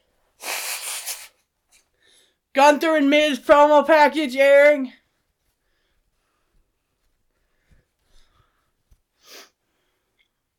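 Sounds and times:
person blowing nose forcefully: 0.4s - 1.5s, 9.2s - 9.6s
speech: 2.6s - 5.0s.

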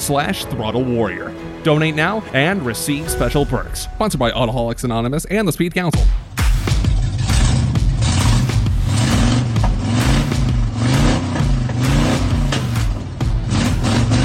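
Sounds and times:
speech: 0.0s - 6.2s
1986 Chevy S10 pickup truck V8 engine revving: 6.3s - 14.2s.

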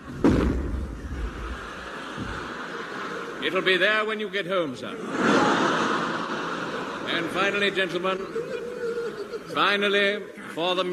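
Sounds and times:
cannon firing a shell: 0.0s - 1.2s
faint thud: 0.1s - 1.0s
laughter: 1.0s - 10.9s
speech: 3.4s - 5.4s, 7.1s - 8.7s, 9.5s - 10.9s.

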